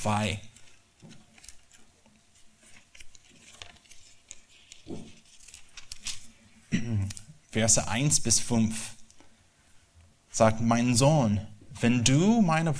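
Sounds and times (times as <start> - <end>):
speech: 0.0 - 1.2, 6.7 - 8.9, 10.4 - 12.7
paper book pages being flipped: 0.2 - 7.4.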